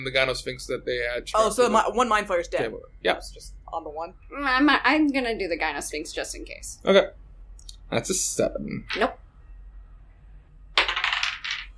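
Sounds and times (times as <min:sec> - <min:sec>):
speech: 0:00.0 - 0:07.2, 0:07.9 - 0:09.2
dice rolling on a table during a tabletop role-playing game: 0:10.8 - 0:11.7.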